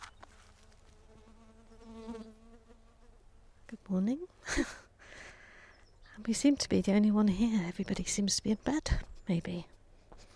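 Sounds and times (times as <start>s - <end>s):
bee buzzing: 0.6s - 3.2s
speech: 3.9s - 4.8s, 6.3s - 9.8s.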